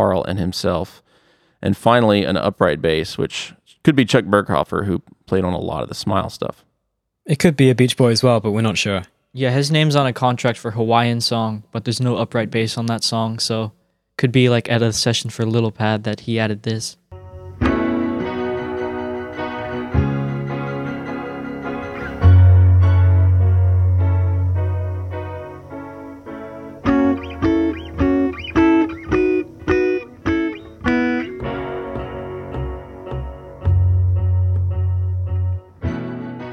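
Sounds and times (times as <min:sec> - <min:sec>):
speech: 0:00.0 - 0:17.0
distorted close-miked bluesy piano chords over sustained low bass notes: 0:17.1 - 0:36.5.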